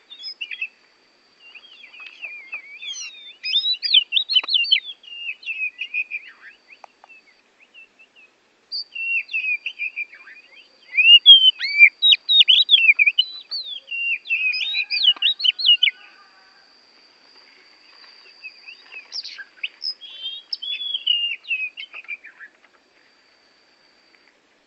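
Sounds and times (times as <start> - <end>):
Bornean oriental magpie-robin song of rich whistled phrases and twittering notes: 0.0 - 0.8, 1.4 - 16.2, 18.0 - 22.8.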